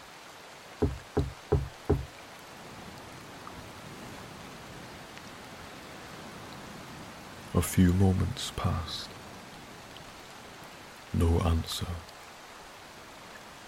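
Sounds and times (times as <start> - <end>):
steady rain-like hiss: 0.0 - 13.6
knocks on a lighthouse door during a storm: 0.8 - 2.1
speech: 7.6 - 9.1, 11.1 - 12.1.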